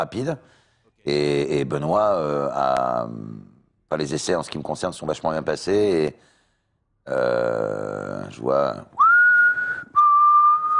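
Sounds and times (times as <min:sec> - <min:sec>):
speech: 0:00.0 - 0:06.3, 0:07.0 - 0:09.0
person whistling two long steady notes: 0:09.0 - 0:10.7.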